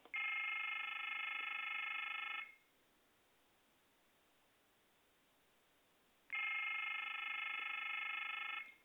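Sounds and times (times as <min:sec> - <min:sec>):
old cordless phone ringing: 0:00.1 - 0:02.6, 0:06.3 - 0:08.8.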